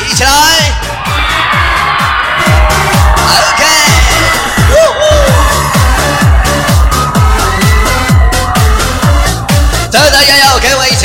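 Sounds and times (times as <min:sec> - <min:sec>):
crowd screaming and cheering: 0:00.0 - 0:11.0
loud dance music with deep thumping bass beats: 0:00.0 - 0:11.0
person shouting: 0:03.2 - 0:05.6.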